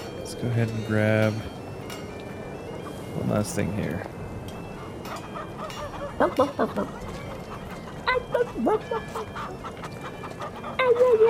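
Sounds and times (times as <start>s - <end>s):
busy noisy background: 0.0s - 11.2s
speech: 0.4s - 1.6s, 3.1s - 4.1s, 6.2s - 7.1s, 8.4s - 9.8s, 10.7s - 11.2s
chicken squawking: 4.8s - 11.2s.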